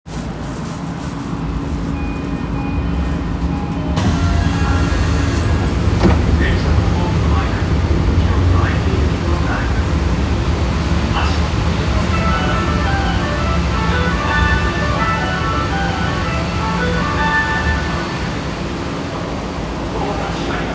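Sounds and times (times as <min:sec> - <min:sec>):
train sounds at Akasaka-mitsuke station Ginza Line: 0:00.1 - 0:20.7.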